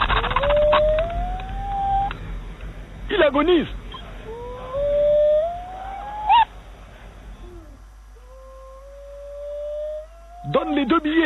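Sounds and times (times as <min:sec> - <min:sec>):
dying dog whimpering and howling in pain: 0:00.2 - 0:02.1, 0:03.9 - 0:06.5, 0:07.4 - 0:11.2
speech: 0:03.3 - 0:03.8.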